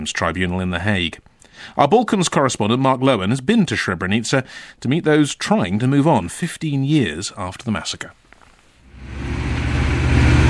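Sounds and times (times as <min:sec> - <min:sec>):
speech: 0:00.0 - 0:08.2
3-ton five-metre-long doorless Hummer engine climbing mountain roads: 0:08.8 - 0:10.4.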